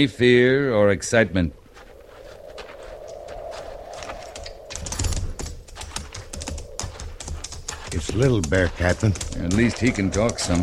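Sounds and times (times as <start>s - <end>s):
speech: 0.0s - 1.6s, 8.0s - 10.6s
horses' hooves clip-clopping on hard ground while led at a slow walk: 4.1s - 10.6s.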